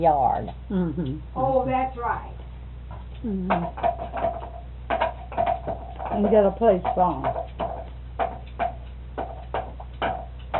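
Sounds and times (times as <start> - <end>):
speech: 0.0 - 2.4, 3.2 - 4.4, 5.6 - 7.6
low steady hum: 0.0 - 10.5
woodpecker pecking at a feeder while eating: 2.8 - 10.5.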